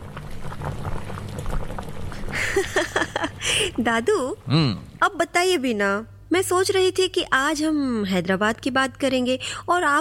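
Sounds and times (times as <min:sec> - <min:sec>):
water boiling in a pot on a gas stove: 0:00.0 - 0:07.3
speech: 0:02.6 - 0:09.9.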